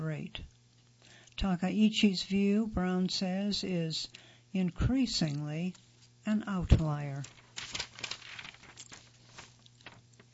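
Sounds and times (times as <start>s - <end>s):
speech: 0.2s - 0.6s, 1.4s - 7.4s
magazine page being turned: 5.2s - 10.3s.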